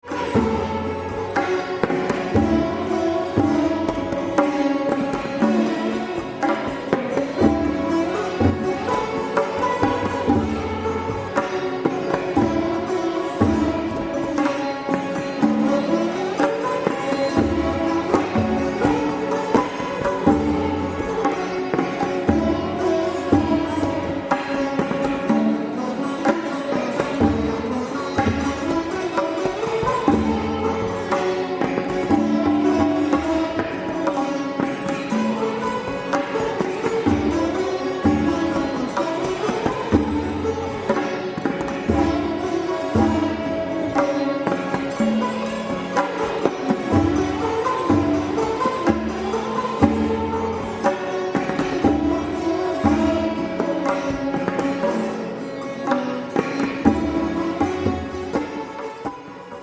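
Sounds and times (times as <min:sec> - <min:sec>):
Mohan Veena playing: 0:00.0 - 0:59.6.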